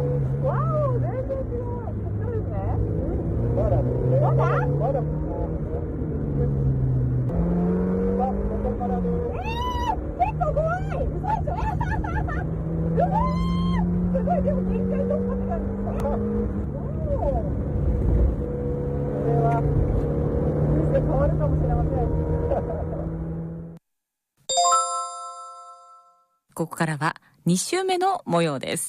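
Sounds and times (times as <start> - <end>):
race car engine running at the pit-road speed limit, heard from inside the car: 0.0 - 23.8
bright chime: 24.5 - 26.4
speech: 26.7 - 28.8.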